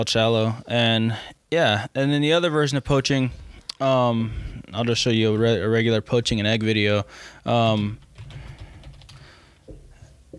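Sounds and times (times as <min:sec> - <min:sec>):
speech: 0:00.0 - 0:08.0
typing on a computer keyboard: 0:08.0 - 0:09.3.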